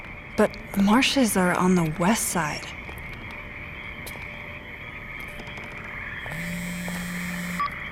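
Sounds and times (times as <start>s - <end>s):
chorus of frogs croaking and trilling: 0.0s - 7.9s
speech: 0.4s - 2.8s
low droning tone: 5.3s - 7.9s.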